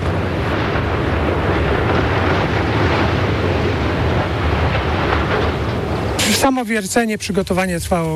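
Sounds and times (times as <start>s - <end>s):
dynamite demolition blast bringing down a mine shaft tower: 0.0s - 6.7s
speech: 6.5s - 8.1s.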